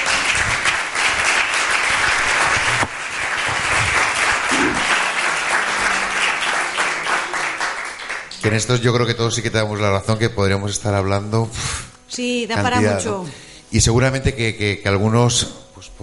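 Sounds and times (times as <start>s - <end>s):
audience applause at the end of a presentation: 0.0s - 8.8s
speech: 8.4s - 16.0s.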